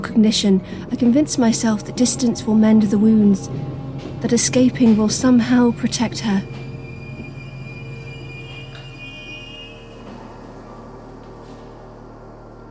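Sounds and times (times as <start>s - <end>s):
train rumbling into station: 0.0s - 12.6s
speech: 0.1s - 6.6s
train wheels screeching and squealing as it slows: 4.2s - 11.0s.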